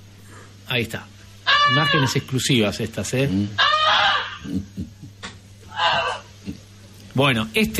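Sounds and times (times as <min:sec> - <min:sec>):
speech: 0:00.7 - 0:03.8, 0:04.4 - 0:05.0, 0:07.2 - 0:07.7
pet goose honking to warn of an approaching fire: 0:01.5 - 0:02.2, 0:03.6 - 0:04.4, 0:05.7 - 0:06.3.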